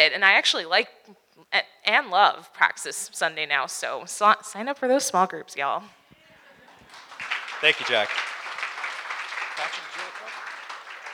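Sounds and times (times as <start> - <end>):
speech: 0.0 - 6.0, 7.6 - 8.3, 9.6 - 9.9
audience applause: 6.4 - 11.1.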